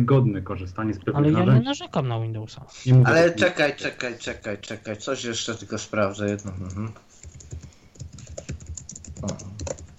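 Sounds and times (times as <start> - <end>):
speech: 0.0 - 7.4, 9.2 - 9.5
typing on a computer keyboard: 6.2 - 9.9.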